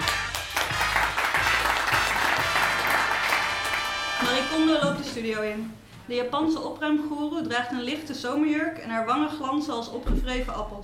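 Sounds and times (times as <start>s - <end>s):
television studio audience applauding loudly: 0.0s - 4.7s
speech: 4.5s - 10.8s.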